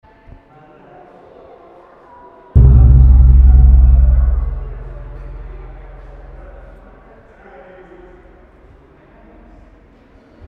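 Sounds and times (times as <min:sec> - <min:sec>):
museum gong in Jakarta: 0:02.6 - 0:07.0.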